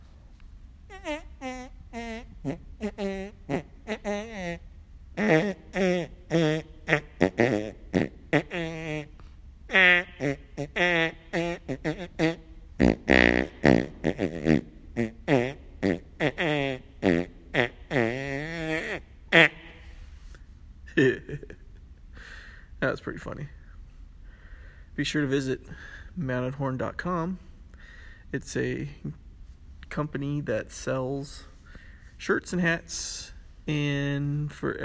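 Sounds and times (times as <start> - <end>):
song made of pitched fart sound effects: 0.9 - 4.6, 5.2 - 19.9
speech: 1.0 - 1.3, 25.0 - 27.5, 28.3 - 29.2, 30.0 - 31.5, 32.2 - 34.8.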